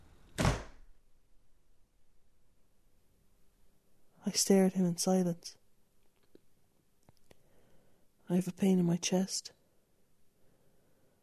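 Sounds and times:
front door shutting as a man walks out: 0.3s - 0.8s
speech: 4.3s - 5.6s, 8.3s - 9.6s.

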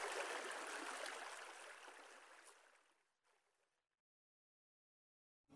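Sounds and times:
fast-flowing water of a stream-fed river in the Midwest: 0.0s - 2.2s.

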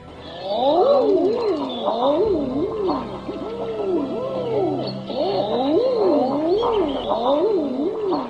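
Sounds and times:
common eider ducks giving crooning ah-ooo calls: 0.2s - 8.2s.

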